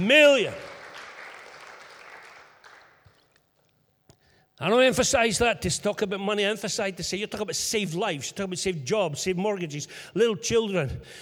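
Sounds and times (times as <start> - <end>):
speech: 0.0 - 0.7, 4.6 - 11.1
audience applause: 0.0 - 3.2.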